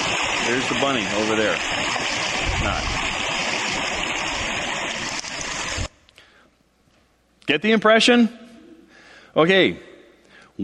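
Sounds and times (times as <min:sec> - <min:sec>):
trickling, gurgling stream water babbling: 0:00.0 - 0:05.9
speech: 0:00.5 - 0:03.1, 0:07.5 - 0:08.4, 0:09.4 - 0:09.9.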